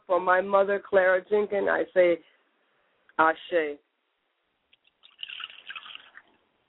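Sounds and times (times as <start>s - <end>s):
speech: 0.1s - 2.4s, 3.2s - 3.8s
soft drips: 4.7s - 6.5s
liquid poured and splashing onto a surface as a libation during prayer: 4.8s - 6.5s.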